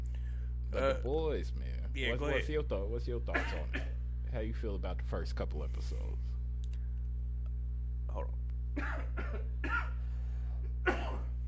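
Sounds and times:
steady low electrical hum: 0:00.0 - 0:11.4
speech: 0:00.7 - 0:06.4, 0:08.1 - 0:09.6
person coughing in a coughing fit: 0:03.3 - 0:04.0, 0:08.8 - 0:10.0, 0:10.8 - 0:11.4.

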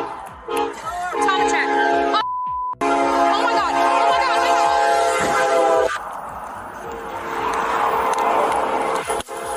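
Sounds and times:
train horn blaring: 0:00.5 - 0:02.2, 0:02.8 - 0:06.0, 0:08.7 - 0:09.5
heavy rumbling roar of a train rushing past: 0:03.6 - 0:09.5.

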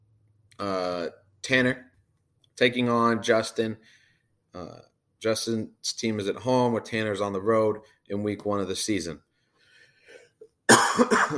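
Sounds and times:
speech: 0:00.6 - 0:01.9, 0:02.6 - 0:09.3, 0:11.0 - 0:11.3
harsh cough: 0:10.2 - 0:11.3.

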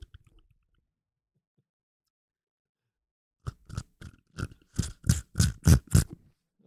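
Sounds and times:
rhythmic mouth smacking: 0:03.5 - 0:06.2
wet mouth slurping: 0:03.5 - 0:06.2.

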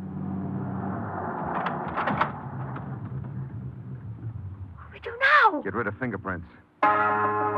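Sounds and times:
car tires crunching: 0:00.0 - 0:04.8
car engine rumbling while pulling over and stopping: 0:00.0 - 0:04.9
speech: 0:05.6 - 0:07.4.

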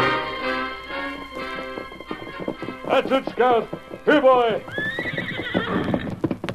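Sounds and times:
paint horse hooves clip-clopping: 0:00.0 - 0:06.5
paint horse whinnying: 0:01.5 - 0:06.4
speech: 0:02.9 - 0:04.8.

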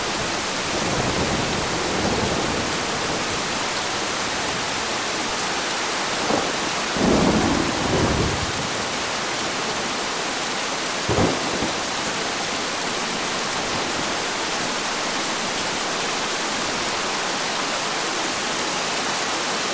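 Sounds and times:
rain of a distant thunderstorm: 0:00.0 - 0:19.7
low rumbles of a distant thunderstorm: 0:00.6 - 0:04.8, 0:06.2 - 0:08.8, 0:11.1 - 0:12.0.

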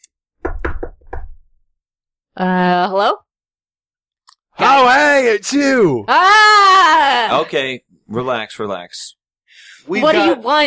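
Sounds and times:
firm knocking on a door: 0:00.4 - 0:01.6
speech: 0:02.4 - 0:03.2, 0:04.6 - 0:09.2, 0:09.8 - 0:10.6.

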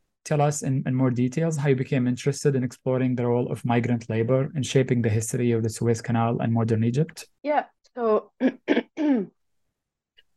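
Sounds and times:
speech: 0:00.2 - 0:09.4
person clearing throat with rough bursts and lower voiced rasp: 0:08.4 - 0:09.3.

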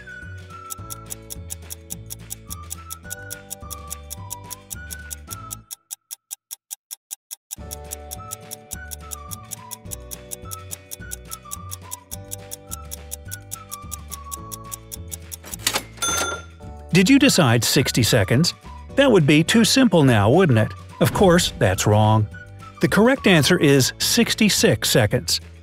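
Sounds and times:
upbeat music: 0:00.0 - 0:05.8, 0:07.6 - 0:25.6
countdown clock for answering a puzzle ticking: 0:00.0 - 0:25.6
speech: 0:17.0 - 0:25.5.

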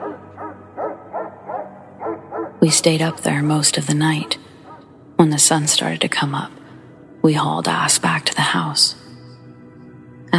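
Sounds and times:
dog barking: 0:00.0 - 0:02.6
speech: 0:02.6 - 0:04.5, 0:05.2 - 0:06.6, 0:07.2 - 0:09.0.

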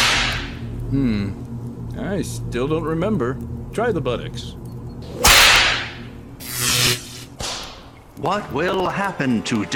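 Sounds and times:
whip cracking: 0:00.0 - 0:00.6, 0:05.2 - 0:06.0
speech: 0:00.9 - 0:05.3, 0:08.2 - 0:09.7.

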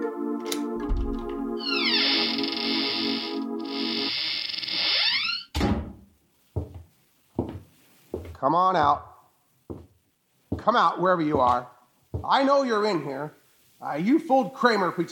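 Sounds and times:
door lock thunks and clicks: 0:00.5 - 0:01.4
door hinge creaking: 0:00.8 - 0:05.6
speech: 0:08.4 - 0:09.1, 0:10.6 - 0:15.1.

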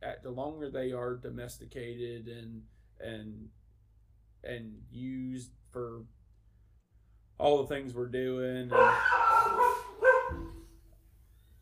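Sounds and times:
speech: 0:00.3 - 0:03.6, 0:04.4 - 0:06.2, 0:07.4 - 0:09.8
young six-month-old blue heeler dog barking: 0:08.7 - 0:10.7.

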